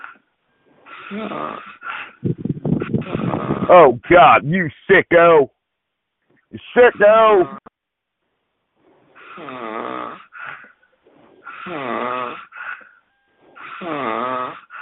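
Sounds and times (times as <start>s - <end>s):
loud rasping snoring: 0.9s - 2.2s, 3.0s - 3.7s, 9.2s - 10.7s, 11.4s - 12.6s, 13.6s - 14.7s
speech: 1.1s - 2.4s, 3.0s - 5.6s, 6.5s - 7.6s.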